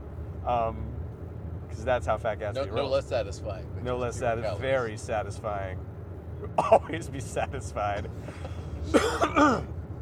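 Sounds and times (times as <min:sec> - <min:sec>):
speech: 0:00.4 - 0:01.0, 0:01.7 - 0:09.8
people coughing with rough throaty hacks: 0:06.5 - 0:06.9, 0:08.0 - 0:09.7.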